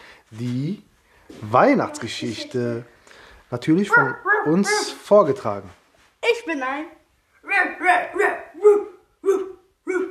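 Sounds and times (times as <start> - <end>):
speech: 0.3 - 2.9, 3.5 - 5.8, 6.4 - 10.0
person imitating a dog barking: 3.9 - 5.0, 7.7 - 10.0.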